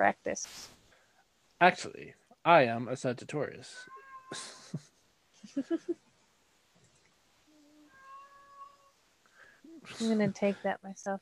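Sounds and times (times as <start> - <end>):
speech: 0.0 - 0.7, 1.6 - 6.1, 9.8 - 11.1
pet cat meowing: 3.8 - 4.4, 7.7 - 9.0.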